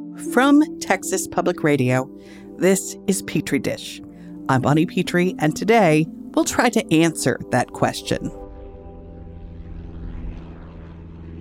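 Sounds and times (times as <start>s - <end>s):
speech: 0.2s - 8.4s
small propeller plane engine droning: 5.4s - 11.3s.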